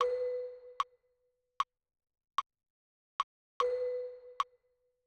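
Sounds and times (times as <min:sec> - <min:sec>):
metronome click: 0:00.0 - 0:01.0, 0:03.6 - 0:04.6.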